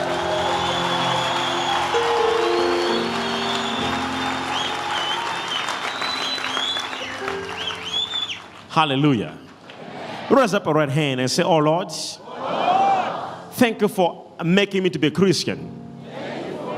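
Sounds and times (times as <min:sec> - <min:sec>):
audience clapping: 0:00.0 - 0:09.8
speech: 0:08.8 - 0:09.4, 0:10.3 - 0:12.2, 0:13.6 - 0:15.8.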